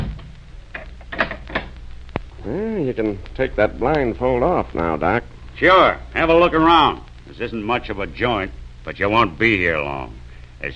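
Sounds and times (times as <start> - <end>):
door closing: 0.0 - 1.7
speech: 2.4 - 10.7.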